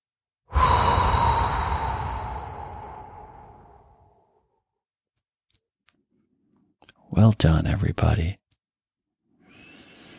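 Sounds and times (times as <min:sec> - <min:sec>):
group exhaling with an audible sigh during a guided breathing exercise: 0:00.5 - 0:04.1
speech: 0:07.1 - 0:08.4.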